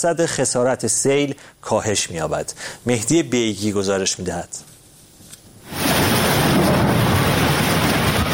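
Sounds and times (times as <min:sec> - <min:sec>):
speech: 0:00.0 - 0:04.7
heavy rain pouring: 0:05.6 - 0:08.3.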